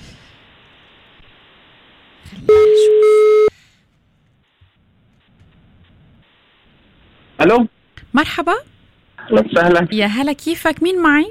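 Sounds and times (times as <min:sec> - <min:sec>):
speech: 0:02.3 - 0:02.7, 0:07.4 - 0:08.7, 0:09.3 - 0:11.2
telephone call tone on the line: 0:02.5 - 0:03.5.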